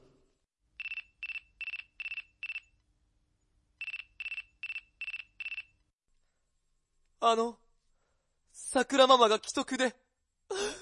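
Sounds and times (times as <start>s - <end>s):
mobile phone ringtone with quick electronic pulses: 0.8s - 2.7s, 3.8s - 5.8s
speech: 7.2s - 7.6s, 8.7s - 10.0s.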